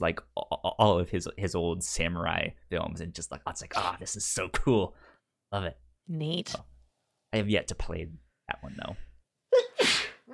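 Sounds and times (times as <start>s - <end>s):
speech: 0.0s - 6.7s, 7.3s - 9.6s
person sneezing: 9.6s - 10.3s.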